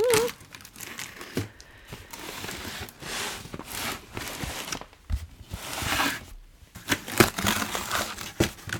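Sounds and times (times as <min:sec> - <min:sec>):
packing tape ripped off a taped cardboard box: 0:00.0 - 0:04.9, 0:06.8 - 0:08.7.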